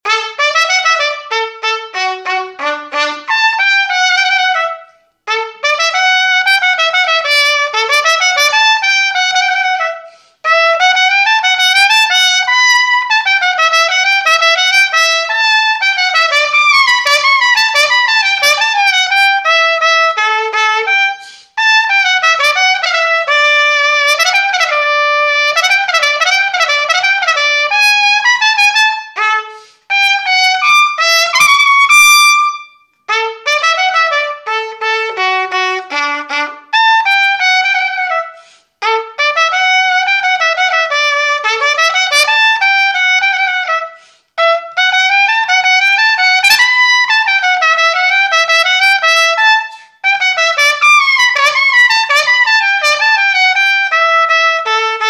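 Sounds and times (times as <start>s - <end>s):
trumpet: 0.0s - 55.0s.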